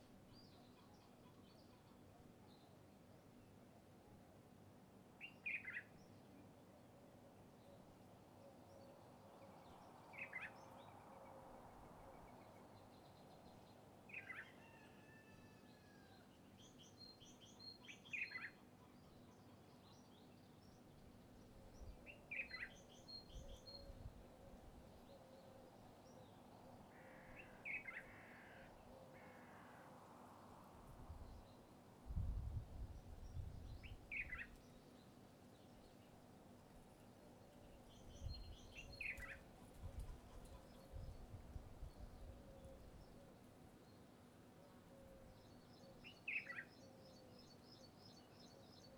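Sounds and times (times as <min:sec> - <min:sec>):
country birds: 0:05.2 - 0:36.2, 0:36.8 - 0:48.9
rooster crowing: 0:14.3 - 0:16.3
crows cawing: 0:26.9 - 0:29.9.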